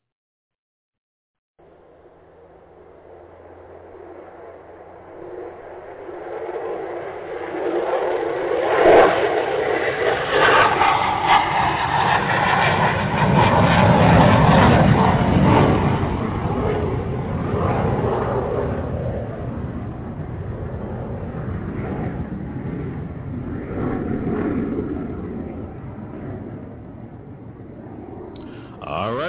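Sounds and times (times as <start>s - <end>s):
airplane engine roar taking off: 1.6s - 29.2s.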